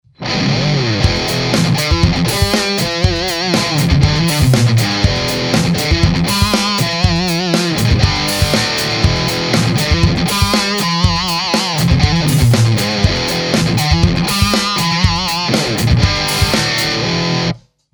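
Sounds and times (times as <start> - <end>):
guitar amplifier recorded for a microphone test: 0.0 - 17.7.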